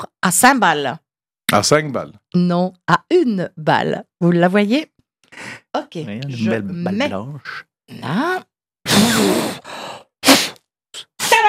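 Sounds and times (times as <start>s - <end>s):
speech: 0.2s - 8.5s
magician blowing breathy puffs during a vanishing-ball trick: 9.0s - 10.6s.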